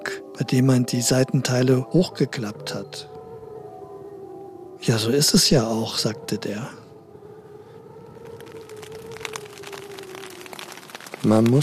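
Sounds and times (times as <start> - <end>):
speech: 0.4 - 3.1, 4.8 - 6.8, 11.2 - 11.6
steady rain pattering outside: 8.0 - 11.6.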